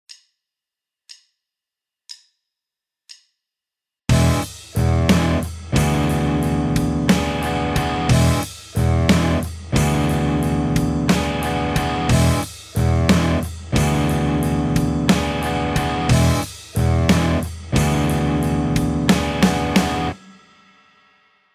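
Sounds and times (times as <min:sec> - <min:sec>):
backing track: 0:04.1 - 0:20.2.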